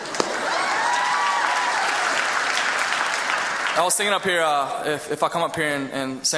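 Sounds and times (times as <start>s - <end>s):
large audience applauding: 0.0s - 4.4s
speech: 3.8s - 6.3s.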